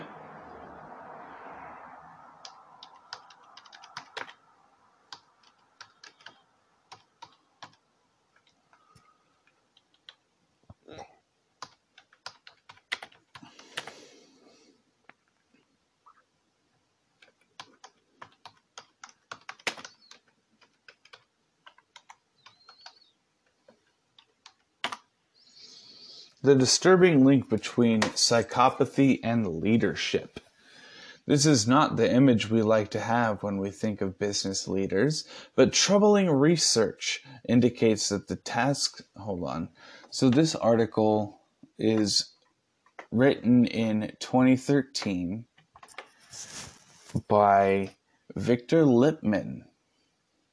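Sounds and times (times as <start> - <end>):
fingers typing on a computer keyboard: 2.4 - 4.4, 5.1 - 10.3, 11.6 - 14.0, 17.2 - 25.1, 45.0 - 46.2
speech: 26.4 - 30.4, 31.3 - 42.3, 43.1 - 45.5, 47.2 - 49.7.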